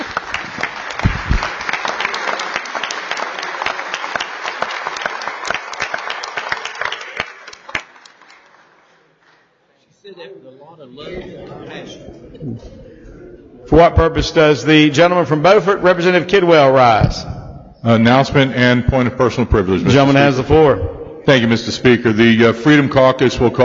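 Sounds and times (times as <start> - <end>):
large crowd applauding in a legislative chamber: 0.0 - 9.7
scattered voices: 10.0 - 14.0
speech: 10.2 - 12.9, 13.7 - 23.6.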